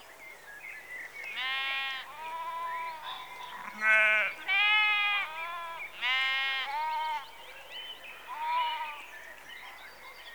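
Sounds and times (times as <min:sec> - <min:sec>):
sheep bleating in a rural setting in the early evening: 0:01.4 - 0:07.2.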